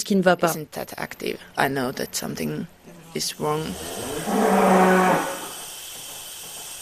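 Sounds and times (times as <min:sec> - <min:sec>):
speech: 0:00.1 - 0:05.3
steady hum of machinery: 0:00.5 - 0:06.7
dairy cow mooing: 0:02.9 - 0:05.6.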